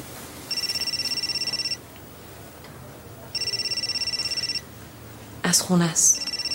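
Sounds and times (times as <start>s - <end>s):
mobile phone ringtone trilling: 0.5s - 1.8s, 3.3s - 4.7s, 6.2s - 6.5s
speech: 5.5s - 6.5s.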